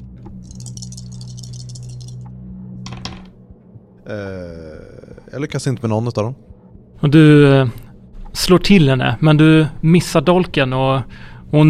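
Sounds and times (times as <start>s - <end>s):
steady low hum: 0.0s - 11.6s
three dice rolled across a hard surface for a role-playing game: 0.4s - 2.2s
speech: 4.1s - 7.8s, 8.4s - 11.6s.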